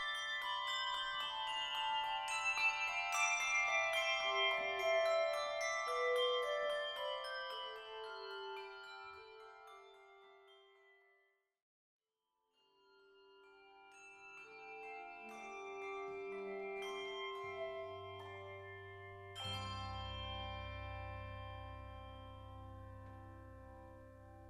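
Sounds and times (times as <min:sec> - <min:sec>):
handbell choir playing a Christmas melody: 0:00.0 - 0:11.0, 0:13.4 - 0:24.4.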